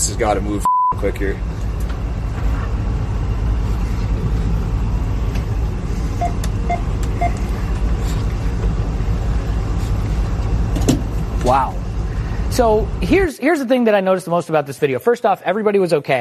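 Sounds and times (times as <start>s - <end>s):
freight train carrying combustible materials rumbling through a wildfire: 0.0s - 13.3s
speech: 0.1s - 1.6s, 11.4s - 11.8s, 12.6s - 16.1s
short beeps: 0.6s - 1.0s, 6.2s - 7.4s.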